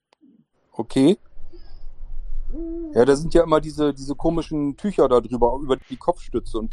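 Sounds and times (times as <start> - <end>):
speech: 0.8 - 1.3, 2.6 - 6.7
constant low rumble: 1.2 - 6.7
eagle-owl hooting: 1.5 - 3.4.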